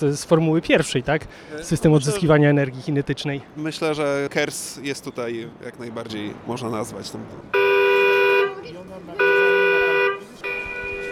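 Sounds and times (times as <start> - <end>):
speech: 0.0 - 7.8
electric cargo bike alarm horn blaring: 7.5 - 8.6, 9.2 - 11.1.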